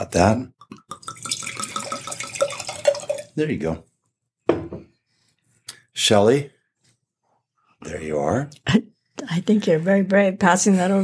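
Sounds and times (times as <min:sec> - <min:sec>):
speech: 0:00.0 - 0:00.6, 0:03.4 - 0:03.9, 0:06.0 - 0:06.6, 0:07.8 - 0:11.0
light clinks of glassware: 0:00.6 - 0:03.3
liquid pouring into a glass: 0:00.6 - 0:03.4.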